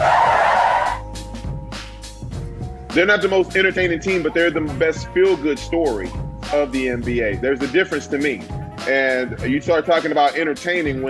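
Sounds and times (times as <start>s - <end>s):
car brakes screeching with squealing tires: 0.0s - 1.0s
speech: 2.9s - 11.0s.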